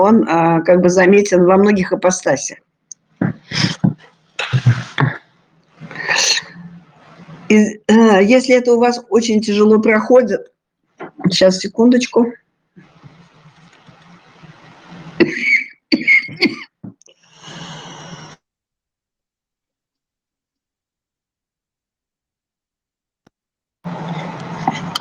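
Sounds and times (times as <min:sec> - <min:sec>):
speech: 0:00.0 - 0:02.6, 0:07.5 - 0:10.5, 0:11.3 - 0:12.9
faint noise: 0:00.0 - 0:18.4
person coughing: 0:15.2 - 0:16.8
breathy rasp: 0:17.2 - 0:18.4.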